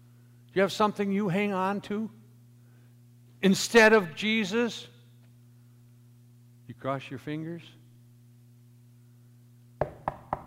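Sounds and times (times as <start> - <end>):
faint low hum: 0.0 - 10.4
speech: 0.6 - 2.2, 3.4 - 4.9, 6.8 - 7.8
sharp hollow knocking on wood: 9.8 - 10.4.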